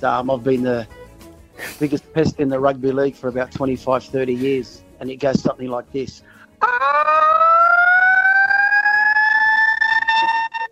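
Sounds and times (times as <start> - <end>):
speech: 0.0 - 1.0, 1.8 - 7.1
man imitating a siren with his voice: 6.6 - 10.7.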